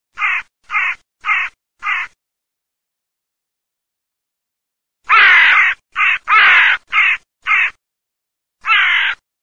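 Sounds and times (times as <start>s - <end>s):
crow cawing: 0.2s - 2.2s, 5.1s - 7.8s, 8.6s - 9.2s.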